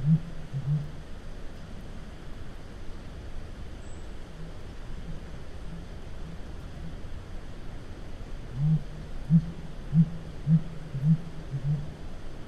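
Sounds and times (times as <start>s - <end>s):
faint low background noise: 0.0s - 12.4s
blue grouse hooting in North America: 8.5s - 11.9s.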